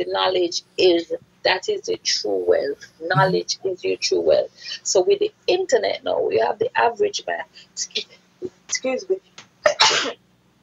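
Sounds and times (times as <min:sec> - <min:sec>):
speech: 0:00.0 - 0:09.3, 0:09.9 - 0:10.2
sneeze: 0:09.7 - 0:10.2.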